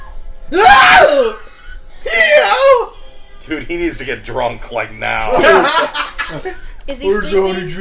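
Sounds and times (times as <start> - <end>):
woman screaming in a film: 0.5 - 1.4, 2.0 - 2.9
speech: 3.7 - 7.7
laughter: 5.3 - 6.8.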